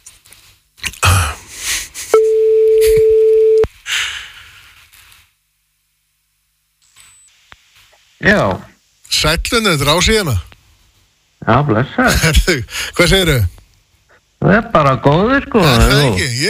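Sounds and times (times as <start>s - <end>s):
telephone ringback tone: 2.2s - 3.7s
speech: 8.2s - 10.5s, 11.4s - 13.6s, 14.4s - 16.4s.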